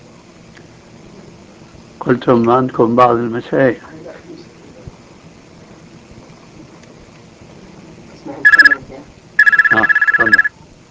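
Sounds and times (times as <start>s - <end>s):
speech: 2.0s - 3.9s
telephone ringing with bright trilling electronic tone: 8.4s - 8.8s, 9.4s - 10.5s.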